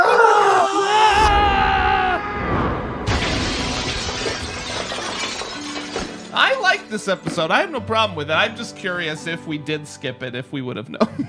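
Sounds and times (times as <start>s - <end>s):
man screaming while throwing a basketball: 0.0s - 2.6s
heavy crash: 1.1s - 7.0s
debris clattering and shattering: 3.1s - 7.5s
speech: 6.9s - 11.2s.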